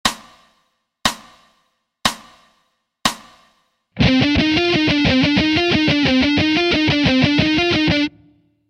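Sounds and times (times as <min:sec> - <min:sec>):
alternate picking: 0:04.0 - 0:08.6.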